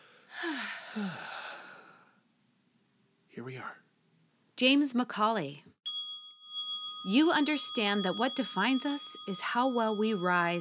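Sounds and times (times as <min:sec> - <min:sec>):
long deep breath drawn and released: 0:00.0 - 0:02.2
speech: 0:00.9 - 0:01.3, 0:03.4 - 0:03.8, 0:04.6 - 0:05.7, 0:07.0 - 0:10.5.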